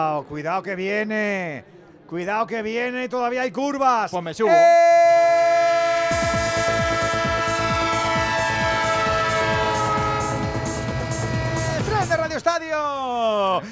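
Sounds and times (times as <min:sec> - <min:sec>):
speech: 0:00.0 - 0:05.0, 0:12.7 - 0:13.7
loud sustained train horn blaring: 0:05.6 - 0:12.2.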